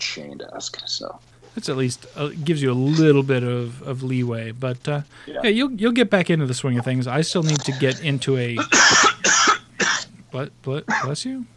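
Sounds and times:
speech: 0:00.2 - 0:09.1, 0:10.3 - 0:11.5
person coughing: 0:08.6 - 0:10.1, 0:10.9 - 0:11.2
throaty voiced hacking: 0:08.6 - 0:10.1.

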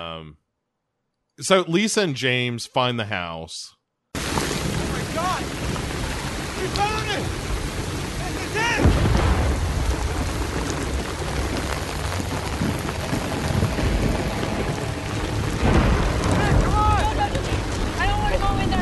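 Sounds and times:
speech: 0:00.0 - 0:00.4, 0:01.4 - 0:03.8, 0:06.6 - 0:07.4
deep rumbles of thunder: 0:04.2 - 0:18.7
heavy rain: 0:04.2 - 0:18.7.

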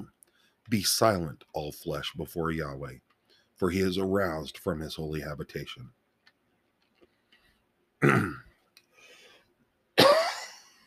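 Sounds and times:
speech: 0:00.7 - 0:03.0, 0:03.6 - 0:06.0, 0:08.0 - 0:08.4
person clearing throat: 0:08.0 - 0:08.5, 0:10.0 - 0:10.6.

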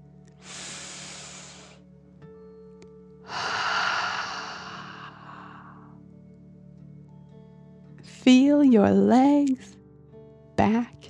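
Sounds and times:
deep breath in and out: 0:00.4 - 0:01.8, 0:03.3 - 0:06.0
speech: 0:08.2 - 0:09.8, 0:10.6 - 0:10.9.

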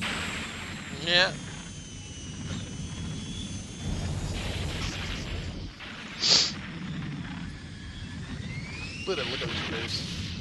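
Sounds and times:
airplane jet engine roaring: 0:00.0 - 0:10.3
speech: 0:01.0 - 0:01.4, 0:09.1 - 0:10.2
sharp hissing burst: 0:03.8 - 0:06.7.

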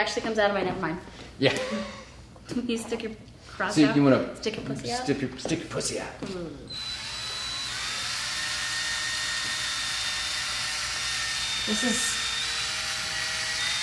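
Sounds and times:
speech: 0:00.0 - 0:07.0, 0:11.7 - 0:12.1
power tool whirring: 0:06.7 - 0:13.8.

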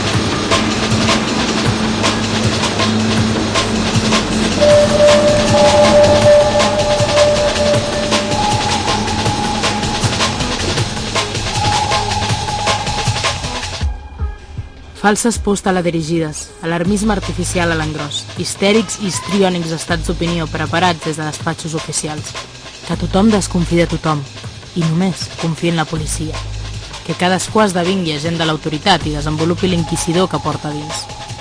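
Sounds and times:
metro train rail clicks: 0:00.0 - 0:13.8
metro train rumbling on rails: 0:00.0 - 0:16.0, 0:16.8 - 0:31.3
metro train thin electric whine: 0:00.3 - 0:14.0
speech: 0:15.0 - 0:26.5, 0:27.1 - 0:31.1.

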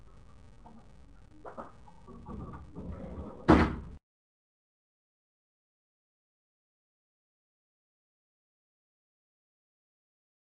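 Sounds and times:
door creaking: 0:00.6 - 0:04.0
door shutting with a sharp thud: 0:02.2 - 0:04.0.

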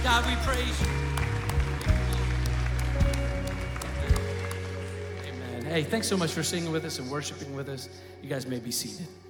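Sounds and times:
congregation clapping together: 0:00.0 - 0:07.2
sustained music: 0:00.0 - 0:09.2
speech: 0:00.2 - 0:01.0, 0:05.7 - 0:09.2.

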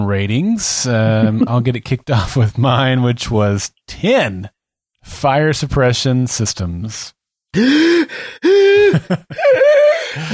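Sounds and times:
speech: 0:00.0 - 0:10.3
person letting out strained, voiced gasps: 0:07.6 - 0:10.3.

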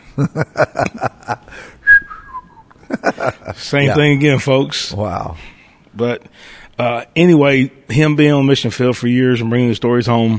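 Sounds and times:
laughter: 0:00.0 - 0:01.7, 0:02.8 - 0:04.1
speech: 0:00.2 - 0:01.1, 0:03.6 - 0:10.3
person whistling a short tune: 0:01.8 - 0:02.7.

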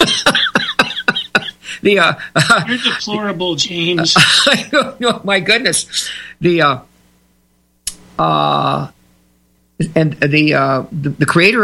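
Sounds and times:
person coughing in a rapid hacking fit: 0:00.0 - 0:01.6
speech: 0:01.8 - 0:06.9, 0:08.2 - 0:09.0, 0:09.8 - 0:11.6.

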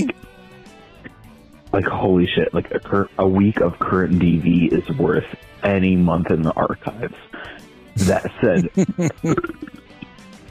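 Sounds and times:
speech: 0:01.8 - 0:09.8
laughter: 0:08.0 - 0:09.7
person belching loudly: 0:08.0 - 0:09.7
gurgly throat sounds: 0:08.0 - 0:09.8.

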